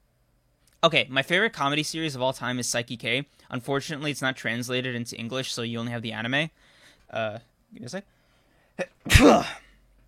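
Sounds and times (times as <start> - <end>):
speech: 0.8 - 8.2, 8.8 - 9.6
single loud sneeze: 8.8 - 9.8.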